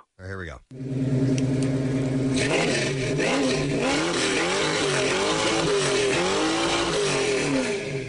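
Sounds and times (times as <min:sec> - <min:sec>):
throaty muscle car engine revving: 0:00.7 - 0:08.0.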